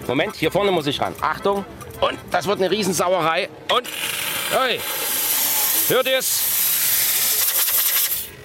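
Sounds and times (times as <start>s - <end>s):
speech: 0.1s - 5.1s, 5.9s - 6.6s
loud steady hiss of compressed air let out of a compressor: 3.9s - 8.4s.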